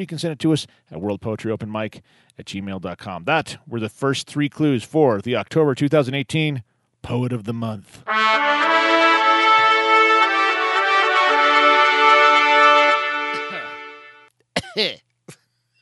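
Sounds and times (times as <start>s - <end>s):
speech: 0.0s - 8.9s, 14.8s - 15.0s
sustained droning musical chord: 8.1s - 14.3s
person coughing loudly: 14.6s - 15.0s.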